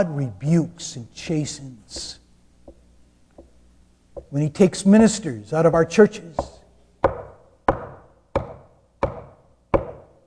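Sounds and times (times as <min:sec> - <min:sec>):
speech: 0:00.0 - 0:02.2, 0:04.2 - 0:06.5
firm knocking on wood: 0:04.2 - 0:04.4, 0:05.8 - 0:10.0.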